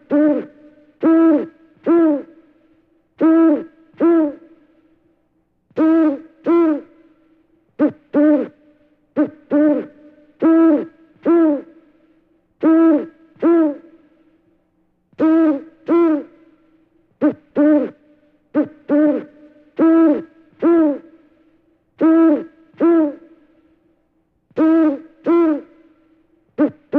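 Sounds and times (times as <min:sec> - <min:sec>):
owl hooting: 0:00.0 - 0:02.5, 0:03.2 - 0:04.6, 0:05.7 - 0:07.0, 0:07.8 - 0:11.8, 0:12.6 - 0:14.0, 0:15.2 - 0:16.6, 0:17.2 - 0:21.3, 0:22.0 - 0:23.5, 0:24.6 - 0:26.0, 0:26.6 - 0:26.9.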